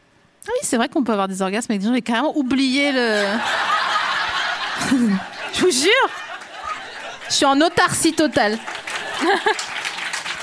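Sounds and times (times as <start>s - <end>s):
speech: 0.5s - 3.7s, 4.8s - 6.3s, 7.3s - 9.7s
laughter: 3.0s - 10.4s
applause from a small group: 6.2s - 10.4s.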